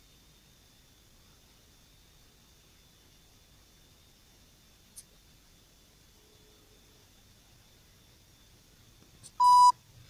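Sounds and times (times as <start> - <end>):
faint low hum: 0.0 - 10.0
telephone line tone beep: 9.4 - 9.7.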